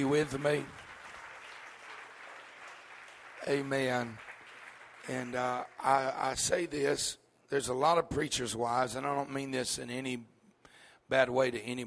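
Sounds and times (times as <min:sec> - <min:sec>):
speech: 0:00.0 - 0:00.8, 0:03.4 - 0:04.3, 0:05.0 - 0:10.3, 0:11.1 - 0:11.8
audience applause at a church service: 0:00.0 - 0:06.3.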